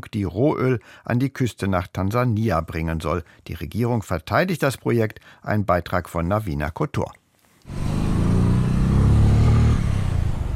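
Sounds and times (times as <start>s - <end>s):
speech: 0.1s - 7.9s
motorcycle engine revving: 7.7s - 10.5s.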